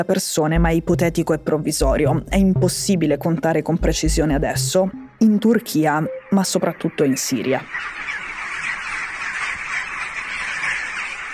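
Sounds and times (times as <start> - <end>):
speech: 0.0 - 8.1
flock of many birds squawking frantically before an earthquake: 7.2 - 11.3.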